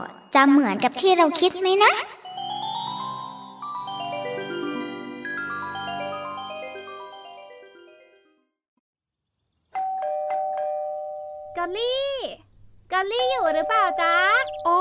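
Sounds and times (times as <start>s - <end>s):
speech: 0.0s - 2.2s
electronic doorbell playing a descending chime melody: 2.3s - 8.2s, 9.8s - 11.7s, 13.2s - 14.7s.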